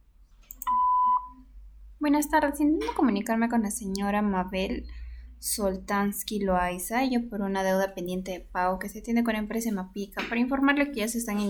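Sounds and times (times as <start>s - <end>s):
answering machine beep: 0.6s - 1.4s
speech: 2.0s - 11.4s.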